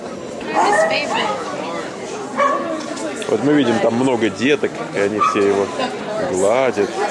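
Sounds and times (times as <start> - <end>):
crowd voices chattering at a dog show: 0.0 - 7.0
speech: 0.9 - 1.6, 3.1 - 7.0
Irish wolfhound barking at a dog show: 2.4 - 2.7, 5.2 - 5.5.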